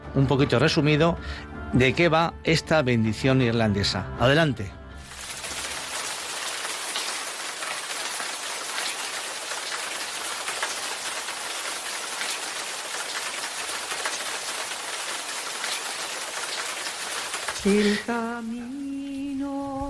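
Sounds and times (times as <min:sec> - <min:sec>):
speech: 0:00.2 - 0:04.8, 0:17.6 - 0:18.9
babbling stream: 0:05.1 - 0:18.4.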